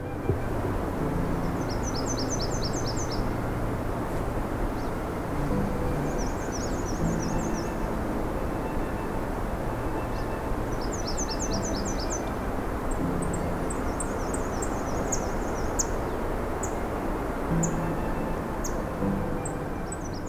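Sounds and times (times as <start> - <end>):
constant low rumble of road or wind noise along a park-edge road: 0.0 - 20.2
black-and-white warblers, red-winged blackbirds and blue jays singing trilling phrases: 1.0 - 3.6, 4.7 - 16.9, 17.5 - 20.2.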